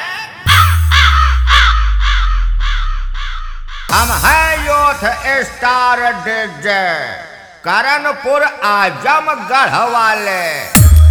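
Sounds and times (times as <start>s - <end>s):
crow cawing: 0.2s - 3.9s
deep sustained booming bass: 0.5s - 6.0s
speech: 4.0s - 10.8s.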